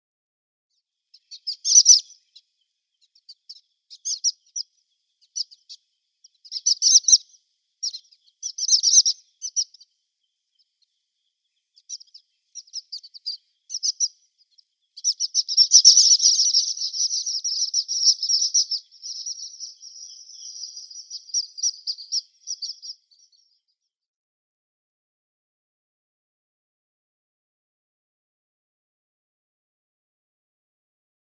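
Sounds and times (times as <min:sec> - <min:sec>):
Orange-cheeked Waxbill calls: 0:01.2 - 0:02.4, 0:03.2 - 0:09.8, 0:11.8 - 0:14.2, 0:15.0 - 0:23.4.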